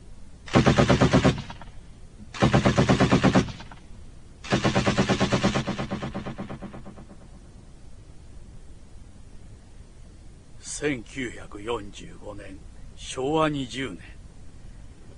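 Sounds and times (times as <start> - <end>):
rapid gunfire from a firing squad executing prisoners in wartime: 0.5 - 1.7, 2.3 - 3.8, 4.4 - 7.4
speech: 10.8 - 14.2.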